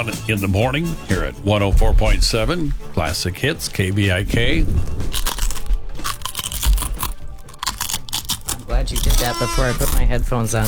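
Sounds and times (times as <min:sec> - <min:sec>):
speech: 0:00.0 - 0:05.3, 0:08.8 - 0:10.6
crunching potato chips: 0:03.9 - 0:10.6.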